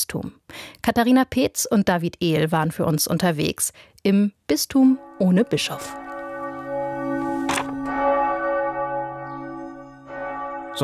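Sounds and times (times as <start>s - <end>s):
speech: 0.1s - 6.0s
church bell ringing: 4.7s - 10.8s.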